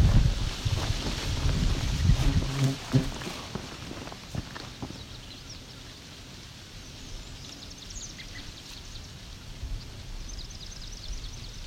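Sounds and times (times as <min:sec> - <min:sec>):
footsteps crunching outdoors: 0:00.0 - 0:05.1
trembling aspen leaves rustling: 0:00.0 - 0:10.3.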